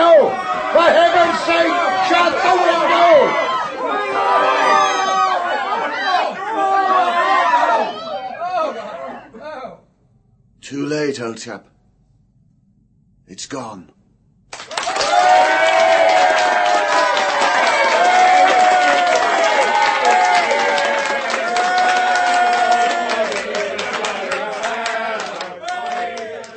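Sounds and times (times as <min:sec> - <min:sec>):
dense crowd of students cheering and shouting: 0:00.0 - 0:08.7, 0:14.6 - 0:26.5
speech: 0:11.2 - 0:11.8, 0:13.3 - 0:14.0.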